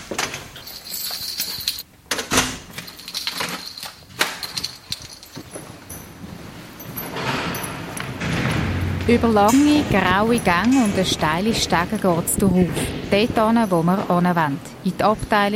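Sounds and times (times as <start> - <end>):
security door swinging open with rattling and scraping: 0.0 - 13.8
speech: 9.1 - 15.5.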